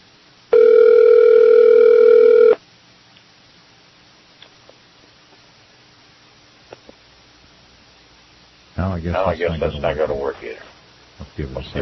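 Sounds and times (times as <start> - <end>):
telephone line tone while dialing a cell phone: 0.5 - 2.6
speech: 9.0 - 11.8.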